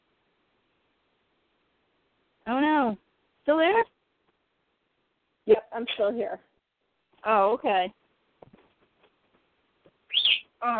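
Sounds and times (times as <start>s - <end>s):
speech: 2.5s - 3.9s, 5.8s - 6.5s, 7.2s - 8.0s, 10.6s - 10.7s
pet bird loud shrill high-pitched squeal: 10.1s - 10.5s
covered-up pet birds chirping at night: 10.1s - 10.6s.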